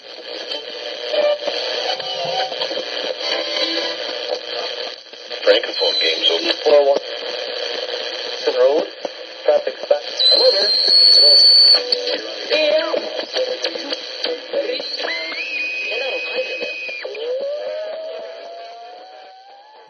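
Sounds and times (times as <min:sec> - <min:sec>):
voices and music from an old radio being tuned: 0:00.0 - 0:19.8
sliding whistling tones from old radio tuning: 0:10.2 - 0:11.9, 0:14.9 - 0:17.4.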